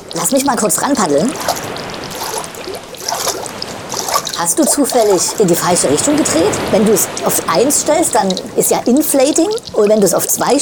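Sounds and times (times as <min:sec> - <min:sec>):
bubbling and gurgling in water: 0:00.0 - 0:10.6
speech: 0:00.2 - 0:01.8, 0:04.4 - 0:10.6.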